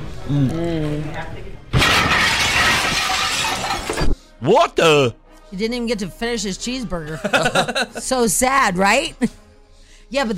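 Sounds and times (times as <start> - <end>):
speech: 0.3 - 1.8, 4.4 - 9.4, 10.1 - 10.3
car smashing through a glass window: 1.7 - 4.1
debris clattering: 1.7 - 4.2
glass shattering: 1.7 - 4.2
laughter: 7.1 - 8.2.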